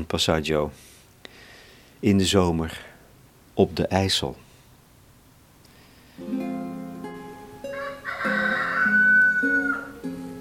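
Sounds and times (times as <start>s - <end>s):
speech: 0.0s - 0.9s, 2.0s - 2.9s, 3.6s - 4.4s, 6.2s - 6.5s
rooster crowing: 7.6s - 10.1s.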